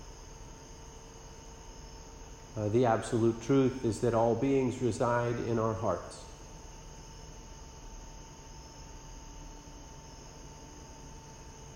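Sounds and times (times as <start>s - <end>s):
crickets chirping: 0.0s - 11.7s
speech: 2.6s - 6.3s.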